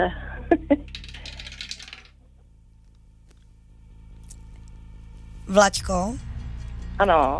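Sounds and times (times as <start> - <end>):
speech: 0.0 - 1.0, 5.5 - 6.3, 7.0 - 7.3
dice clattering down a dice tower: 0.8 - 2.2.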